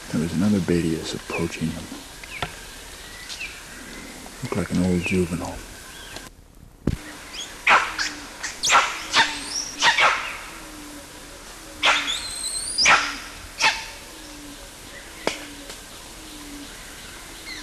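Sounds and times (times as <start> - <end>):
speech: 0.1 - 2.1, 4.5 - 5.7
animal squealing and barking: 7.3 - 11.0, 11.6 - 14.5.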